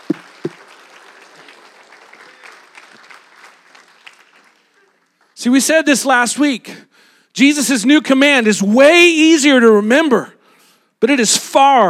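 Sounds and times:
audience applause: 0:00.0 - 0:05.4
speech: 0:05.4 - 0:10.4, 0:11.0 - 0:11.8.

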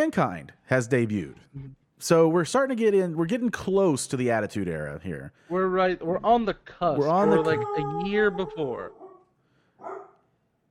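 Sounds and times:
speech: 0:00.0 - 0:09.0
single short dog bark: 0:08.2 - 0:10.2.

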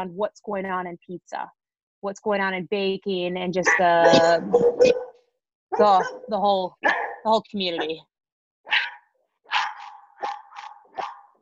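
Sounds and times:
speech: 0:00.0 - 0:05.1, 0:05.7 - 0:08.1
dog barking: 0:03.6 - 0:08.0, 0:08.6 - 0:11.4.

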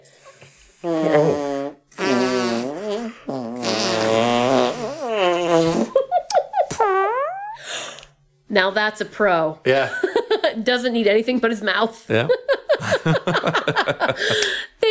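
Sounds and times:
mouth-blown fart noises made against an arm: 0:00.2 - 0:08.2
speech: 0:00.8 - 0:01.4, 0:08.5 - 0:10.0, 0:10.6 - 0:14.7
laughter: 0:12.3 - 0:14.5.

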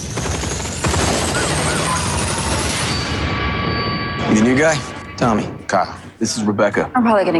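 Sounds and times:
gunfire barrage in a police shootout: 0:00.0 - 0:05.0
speech: 0:04.3 - 0:07.3.

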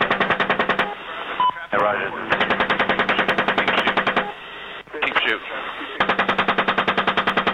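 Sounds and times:
machine-gun fire during a military engagement involving Humvees: 0:00.0 - 0:00.9, 0:02.3 - 0:04.3, 0:06.0 - 0:07.5
radio chatter: 0:00.0 - 0:06.5
speech: 0:01.7 - 0:02.4, 0:05.3 - 0:05.8.

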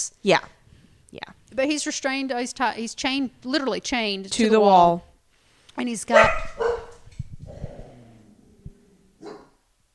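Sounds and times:
speech: 0:00.0 - 0:05.1, 0:05.8 - 0:06.7
dog barking excitedly with short yappy woofs: 0:06.1 - 0:07.1, 0:09.2 - 0:09.6.

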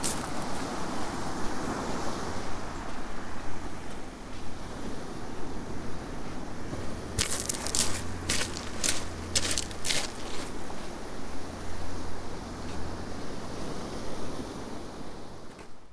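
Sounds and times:
crunching footsteps on a coastal path: 0:00.0 - 0:00.9, 0:06.7 - 0:11.4
rushing wash like surf or wind on a coastal path: 0:00.0 - 0:15.4.

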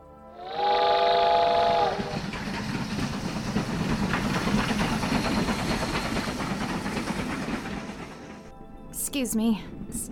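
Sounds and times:
train whistle: 0:00.3 - 0:02.4
passenger train rumbling along rails with rhythmic clattering: 0:00.4 - 0:10.1
speech: 0:09.2 - 0:10.1.

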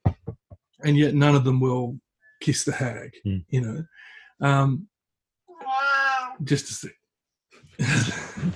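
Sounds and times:
speech: 0:00.8 - 0:04.9, 0:06.4 - 0:07.0, 0:07.8 - 0:08.5
cat meowing: 0:05.5 - 0:06.4.

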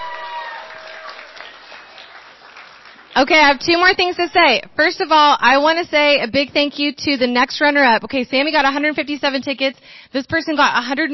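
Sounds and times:
crowd applauding at a school prize announcement: 0:00.0 - 0:04.4
speech: 0:03.2 - 0:11.1.

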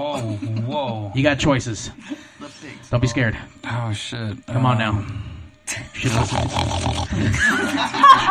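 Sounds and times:
laughter: 0:00.0 - 0:01.2, 0:05.7 - 0:08.2
speech: 0:00.0 - 0:02.3, 0:02.9 - 0:08.2
person imitating a pig snorting: 0:06.0 - 0:07.4.

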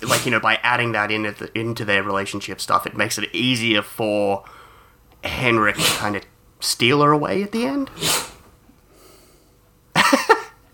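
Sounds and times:
dog sneezing: 0:00.0 - 0:00.4, 0:05.3 - 0:06.2, 0:07.9 - 0:08.6
speech: 0:00.2 - 0:04.6, 0:05.2 - 0:08.2.

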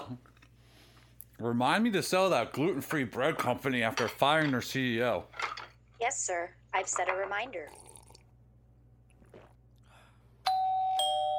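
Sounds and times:
speech: 0:01.4 - 0:05.4, 0:06.0 - 0:07.8
two-tone doorbell chime: 0:10.5 - 0:11.3.

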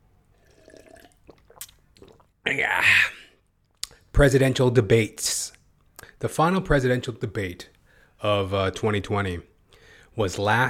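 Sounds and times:
person sipping water: 0:00.3 - 0:02.4
speech: 0:02.5 - 0:03.2, 0:04.2 - 0:05.6, 0:06.2 - 0:09.5, 0:10.2 - 0:10.6.

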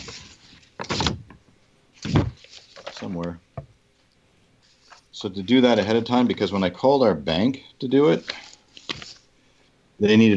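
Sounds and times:
crinkly paper rustling from sheets of written notes: 0:00.0 - 0:01.2, 0:02.0 - 0:03.4, 0:04.6 - 0:06.8, 0:08.0 - 0:09.3
speech: 0:03.1 - 0:03.4, 0:05.2 - 0:08.4, 0:10.0 - 0:10.3.

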